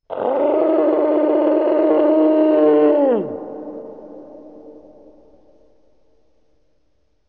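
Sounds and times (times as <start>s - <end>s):
dragon beast scream: 0.1s - 3.5s.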